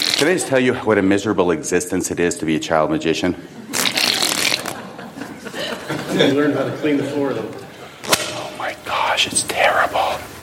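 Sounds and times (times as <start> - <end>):
playing cards being riffle shuffled in an air shuffle: 0.0 - 0.3, 3.8 - 4.8, 8.0 - 10.4
speech: 0.2 - 3.8, 6.2 - 7.6
laughter: 3.2 - 8.0.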